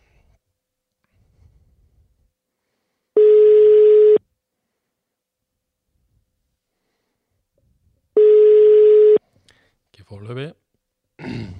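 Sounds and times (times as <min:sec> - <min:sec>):
outgoing phone call ringing tone beeps: 0:03.2 - 0:04.2, 0:08.2 - 0:09.2.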